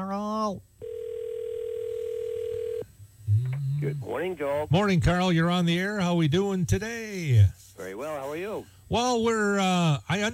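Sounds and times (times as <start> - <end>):
speech: 0.0 - 0.7, 3.8 - 10.3
telephone ringing on an outgoing call to a landline: 0.8 - 2.8
quiet phone line noise: 0.8 - 2.9.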